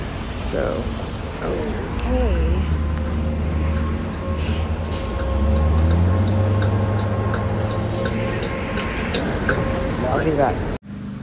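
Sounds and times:
large city bus engine rumbling as it slows at a stop: 0.0s - 11.2s
speech: 0.5s - 2.8s, 10.2s - 10.8s
steady ticking: 2.7s - 9.9s.

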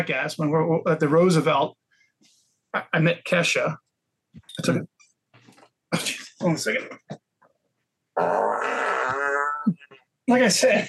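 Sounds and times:
speech: 0.0s - 3.8s, 4.4s - 4.9s, 5.9s - 7.2s, 8.2s - 8.9s, 9.7s - 10.8s
short sputtering fart bursts from a professional farter: 8.2s - 9.7s.

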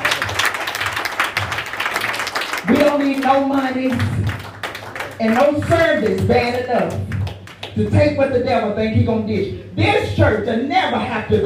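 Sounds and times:
church audience applauding: 0.0s - 7.7s
speech: 2.7s - 4.2s, 5.2s - 7.1s, 7.8s - 11.4s.

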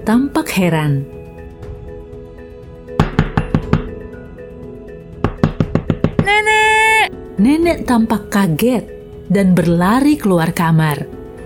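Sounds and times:
speech: 0.0s - 1.2s, 7.4s - 11.2s
firm knocking on a door: 3.0s - 4.1s, 5.2s - 6.4s.

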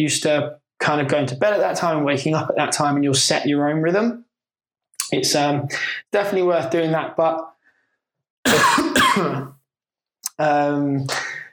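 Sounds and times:
speech: 0.0s - 4.2s, 5.0s - 7.5s, 8.4s - 9.6s, 10.4s - 11.3s
person coughing from chili being cooked in the kitchen: 8.5s - 9.6s.

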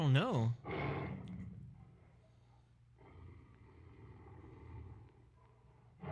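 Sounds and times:
speech: 0.0s - 0.7s
tigress growl-roar: 0.6s - 1.7s, 3.0s - 5.2s.

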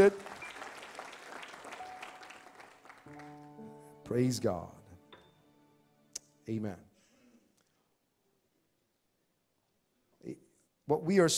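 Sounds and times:
speech: 0.0s - 0.3s, 4.1s - 4.8s, 6.5s - 6.9s, 10.2s - 11.3s
congregation clapping hands in a church: 0.0s - 4.4s
sustained musical chord: 1.7s - 6.8s.

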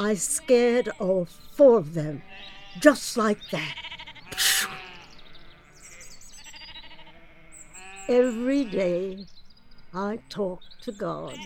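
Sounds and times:
sheep bleating: 0.0s - 1.2s, 2.0s - 9.2s, 11.2s - 11.4s
speech: 0.0s - 4.6s, 8.1s - 11.4s.

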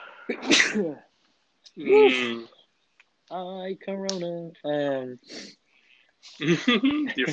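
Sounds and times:
loud sneezes: 0.0s - 1.0s, 1.8s - 2.4s
speech: 0.3s - 1.1s, 1.8s - 2.5s, 3.3s - 5.6s, 6.2s - 7.3s
laughter: 6.4s - 7.3s.

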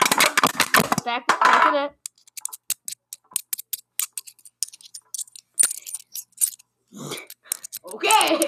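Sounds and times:
speech: 1.0s - 2.0s, 8.0s - 8.4s
coins clinking and tapping together for ASMR: 2.2s - 6.6s, 7.2s - 8.4s.

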